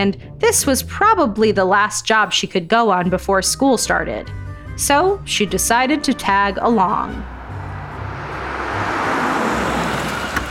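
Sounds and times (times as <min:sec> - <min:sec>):
speech: 0:00.0 - 0:07.4
old pickup truck engine rumbling as it pulls up: 0:05.4 - 0:10.4.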